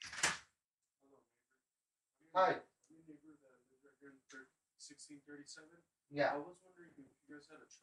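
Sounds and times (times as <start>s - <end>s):
front door being pulled open: 0.0s - 0.5s
speech: 2.3s - 3.4s, 4.0s - 7.8s.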